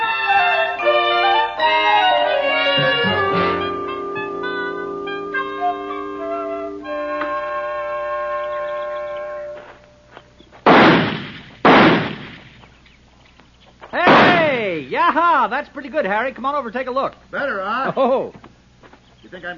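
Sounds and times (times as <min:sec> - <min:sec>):
sustained tonal music-like sounds: 0:00.0 - 0:09.9
target pistol shots with decay: 0:10.6 - 0:12.6, 0:14.0 - 0:14.6
speech: 0:15.4 - 0:18.4, 0:19.3 - 0:19.5.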